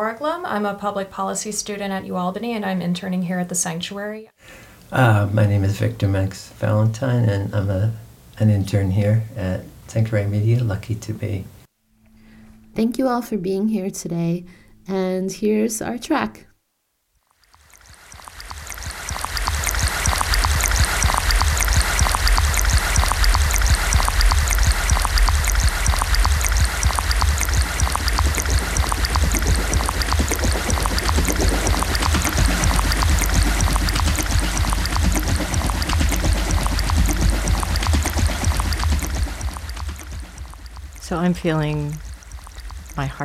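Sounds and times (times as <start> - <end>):
speech: 0.0 - 11.6, 12.8 - 16.5, 41.3 - 42.0, 43.0 - 43.2
water flowing like a spring or small stream: 17.4 - 43.2.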